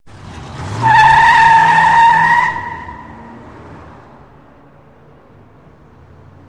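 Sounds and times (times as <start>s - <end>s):
car engine short rev: 0.0s - 4.1s
car tires hot peel: 0.0s - 4.2s.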